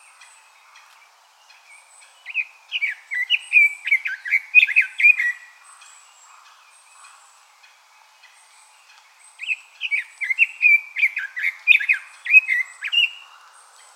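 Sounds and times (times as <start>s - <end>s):
red-billed leiothrix singing: 0.0s - 13.9s.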